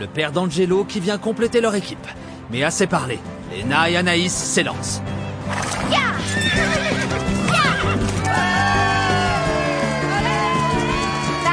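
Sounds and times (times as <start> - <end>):
speech: 0.0 - 7.3
pony neighing during a race: 6.2 - 8.2
clip-clop hoofbeats: 6.4 - 11.5.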